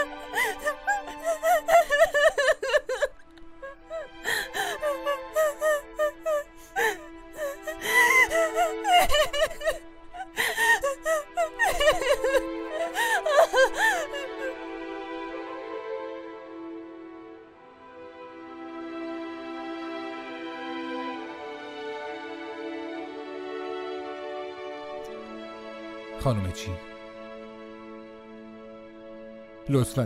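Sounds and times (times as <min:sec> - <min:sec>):
person sobbing and whimpering: 0:00.0 - 0:14.6
speech: 0:26.3 - 0:26.9, 0:29.7 - 0:30.0.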